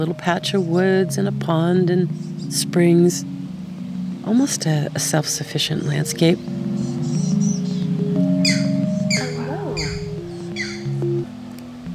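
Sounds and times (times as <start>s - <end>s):
speech: 0.0s - 3.4s, 4.2s - 6.6s
steady low droning hum: 0.0s - 11.9s
green heron chicks squawking: 5.1s - 11.0s.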